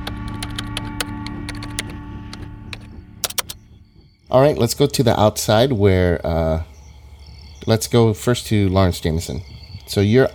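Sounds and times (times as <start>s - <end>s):
typing on a computer keyboard: 0.0s - 3.6s
low constant hum: 0.0s - 10.3s
speech: 4.3s - 6.7s, 7.6s - 10.3s.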